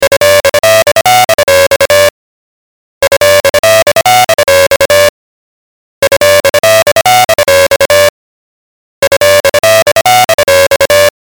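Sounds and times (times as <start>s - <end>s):
ringtone: 0.0s - 2.2s, 3.0s - 5.2s, 6.0s - 8.2s, 9.0s - 11.2s.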